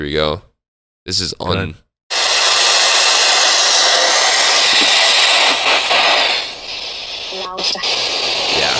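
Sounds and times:
speech: 0.0s - 1.8s, 7.5s - 8.7s
broadband static from a scanning radio device: 2.1s - 8.7s.

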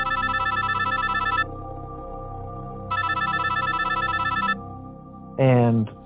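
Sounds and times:
telephone ringing in electronic trill: 0.0s - 1.5s, 2.9s - 4.6s.

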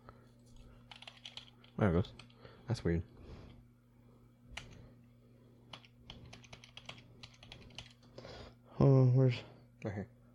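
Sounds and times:
steady low electrical hum: 0.0s - 10.3s
typing on a computer keyboard while setting up a livestream: 0.9s - 2.4s, 5.7s - 8.1s
speech: 1.8s - 3.2s, 8.8s - 10.2s.

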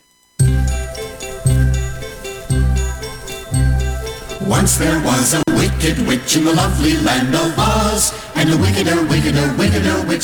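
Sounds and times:
loud ringing bell-like chords opening a song: 0.4s - 5.5s
speech: 4.5s - 10.2s.

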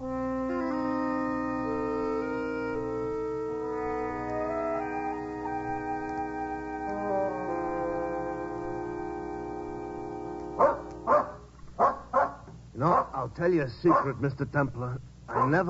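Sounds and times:
orchestral music: 0.0s - 11.1s
dog barking: 10.6s - 13.2s, 13.9s - 14.2s, 15.3s - 15.6s
speech: 13.2s - 15.6s.

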